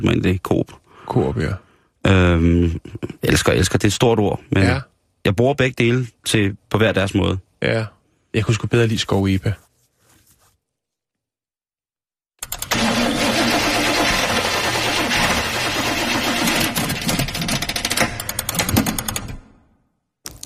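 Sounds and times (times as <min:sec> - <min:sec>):
speech: 0:00.0 - 0:09.6
car engine cranking but failing to start: 0:12.4 - 0:19.4.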